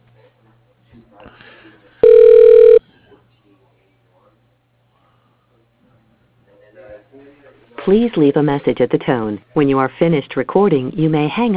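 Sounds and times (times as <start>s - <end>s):
phone line ringing as a call is transferred: 2.0s - 2.8s
speech: 7.9s - 11.5s.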